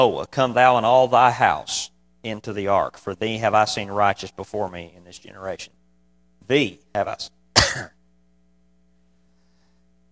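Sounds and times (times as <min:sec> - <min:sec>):
speech: 0:00.0 - 0:05.8, 0:06.5 - 0:08.0
throat clearing during a Bible reading: 0:07.6 - 0:08.0.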